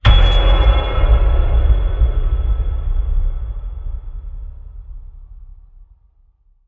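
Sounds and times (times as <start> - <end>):
dark piano ping: 0.0 - 5.3.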